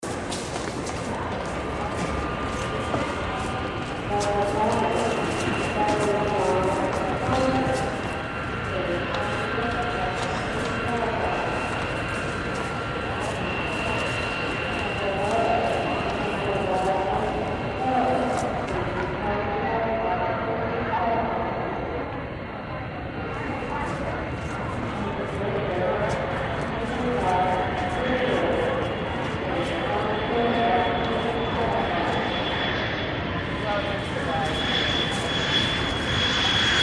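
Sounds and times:
airport lobby ambience: 0.0 - 36.8.

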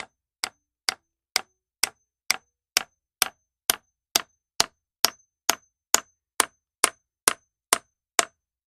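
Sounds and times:
hammer hitting nail into wood: 0.0 - 8.5.

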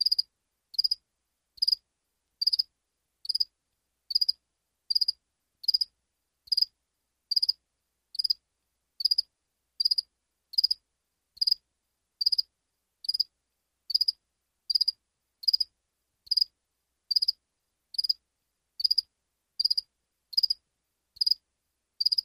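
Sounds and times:
cricket chirping: 0.0 - 1.0, 1.6 - 1.8, 2.4 - 3.5, 4.1 - 5.9, 6.5 - 6.7, 7.3 - 7.6, 8.2 - 8.4, 9.0 - 10.8, 11.4 - 11.6, 12.2 - 13.3, 13.9 - 15.7, 16.3 - 16.5, 17.1 - 17.4, 18.0 - 18.2, 18.8 - 20.6, 21.2 - 21.4, 22.0 - 22.2.

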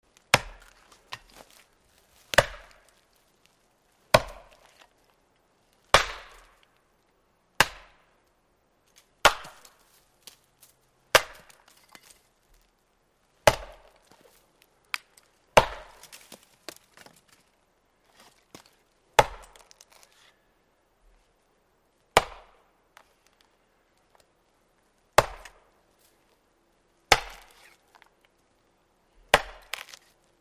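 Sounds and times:
axe chopping wood: 0.3 - 1.6, 2.2 - 2.9, 4.1 - 4.9, 5.9 - 6.6, 7.6 - 8.0, 9.2 - 10.4, 11.1 - 12.1, 13.4 - 14.2, 14.9 - 17.2, 18.2 - 20.0, 22.1 - 22.6, 25.2 - 25.6, 27.1 - 27.9, 29.3 - 30.1.

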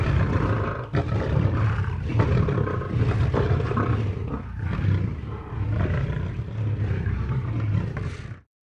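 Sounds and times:
lion roaring: 0.0 - 8.5.

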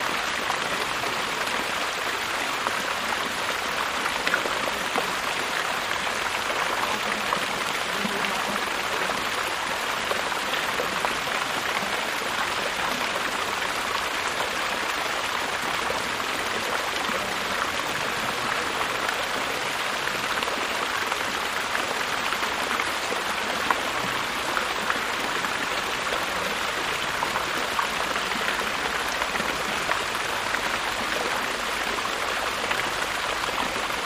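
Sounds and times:
fountains: 0.0 - 34.0
stream water in a pool: 0.0 - 34.0.

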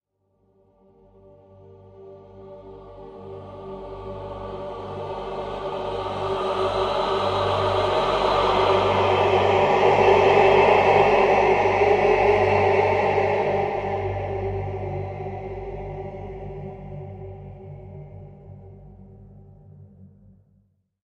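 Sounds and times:
choirs singing: 2.2 - 18.4.

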